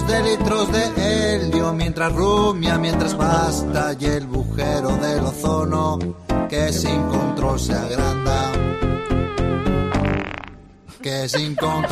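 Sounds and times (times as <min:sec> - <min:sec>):
speech: 0:00.1 - 0:08.9, 0:11.0 - 0:11.9
laughter: 0:02.9 - 0:03.9, 0:10.9 - 0:11.9
cow fart sound effect: 0:09.8 - 0:10.8.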